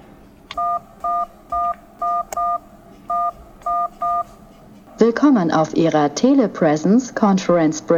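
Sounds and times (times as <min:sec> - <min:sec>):
phone keypad tones entering conference ID: 0:00.5 - 0:04.4
speech: 0:05.1 - 0:07.9.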